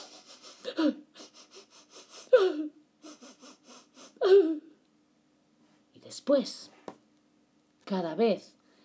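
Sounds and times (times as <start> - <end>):
voice imitating faint whispered crying: 0.0 - 4.8
speech: 0.6 - 1.1, 6.3 - 6.7, 7.9 - 8.6.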